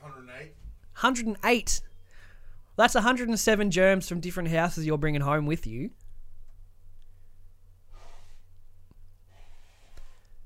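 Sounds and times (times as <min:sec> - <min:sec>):
steady low hum: 0:00.0 - 0:09.4
speech: 0:00.4 - 0:01.9, 0:02.8 - 0:06.0
sick young child blowing congested nose: 0:07.9 - 0:08.5, 0:09.3 - 0:10.2.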